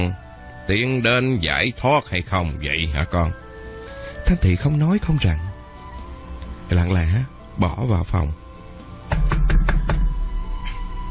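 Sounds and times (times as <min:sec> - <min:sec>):
speech: 0:00.0 - 0:03.4, 0:04.3 - 0:05.5, 0:06.7 - 0:08.4
knocking on a door: 0:09.1 - 0:10.5.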